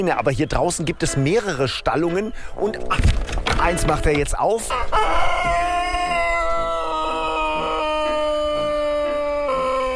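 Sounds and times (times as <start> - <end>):
speech: 0.0 - 5.6
Sanchak rooster crowing in an outdoor poultry area: 4.7 - 9.9.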